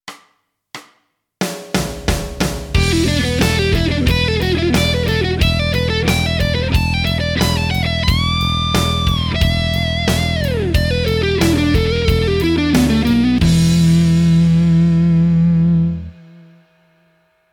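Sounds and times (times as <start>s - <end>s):
slow guitar lick: 2.8s - 16.6s.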